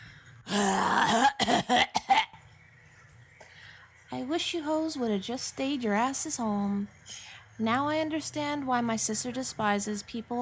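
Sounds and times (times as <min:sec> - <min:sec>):
person coughing with a rough throaty hack: 0:00.5 - 0:02.4
speech: 0:04.4 - 0:10.4.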